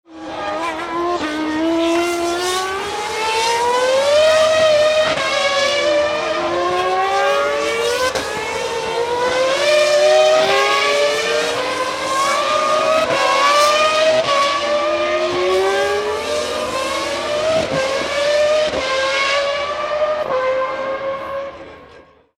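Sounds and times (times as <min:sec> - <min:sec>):
F1 racing car engines: 0:00.1 - 0:22.3.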